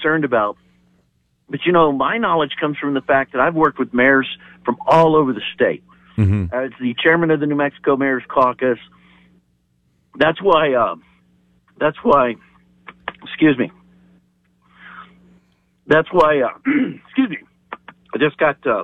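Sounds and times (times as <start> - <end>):
speech: 0.0 - 0.7, 1.5 - 9.0, 10.2 - 11.1, 11.8 - 12.5, 13.2 - 13.8, 15.9 - 17.5, 18.1 - 18.8
faint steady hum: 0.0 - 18.8
throat clearing after swallowing wrong: 6.2 - 6.6.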